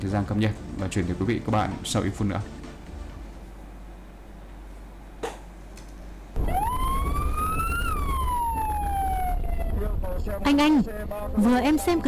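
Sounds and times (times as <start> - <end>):
speech: 0.0 - 2.6, 10.6 - 12.0
steady traffic rumble: 6.2 - 12.0
ambulance siren wailing: 6.4 - 10.4.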